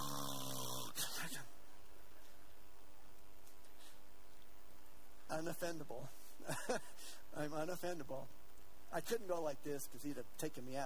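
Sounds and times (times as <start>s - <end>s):
voice imitating the loud snore of a large man seated on a plane: 0.0s - 1.2s
speech: 5.3s - 10.8s.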